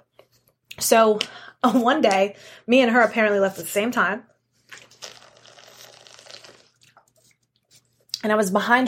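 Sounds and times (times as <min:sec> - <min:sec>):
speech: 0:00.8 - 0:04.3, 0:08.2 - 0:08.8
person sipping a drink of water: 0:04.6 - 0:08.2.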